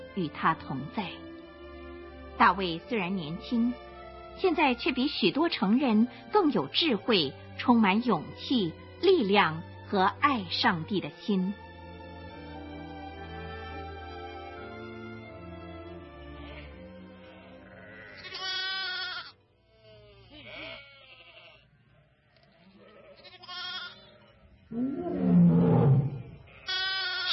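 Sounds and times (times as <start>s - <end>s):
speech: 0.2s - 1.2s, 2.4s - 11.6s
lamb bleating in drawn-out wavering cries: 16.4s - 21.7s, 22.4s - 25.0s, 26.1s - 27.3s
lion roaring: 24.7s - 26.5s.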